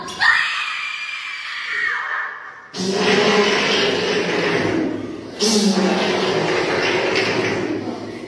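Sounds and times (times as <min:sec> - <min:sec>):
scream: 0:00.0 - 0:02.7
fart: 0:02.7 - 0:08.2.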